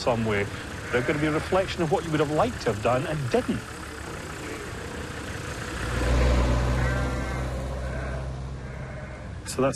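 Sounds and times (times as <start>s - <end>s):
speech: 0.0s - 3.8s, 9.6s - 9.7s
low steady rumble: 0.0s - 9.7s
sheep bleating on a farm: 0.7s - 1.6s, 6.8s - 9.4s.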